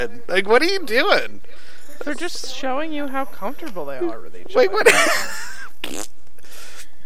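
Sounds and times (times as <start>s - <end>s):
speech: 0.0s - 6.2s
laughter: 4.8s - 5.7s
farting: 5.8s - 6.2s.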